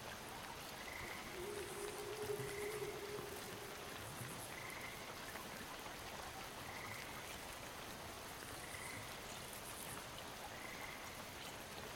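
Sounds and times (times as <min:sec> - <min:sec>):
steady dense hiss by woods and water at night: 0:00.0 - 0:11.9
short mid-pitched frog-like calls: 0:00.8 - 0:05.0
faint high chirps: 0:01.0 - 0:04.0
brief low drone: 0:01.2 - 0:04.6.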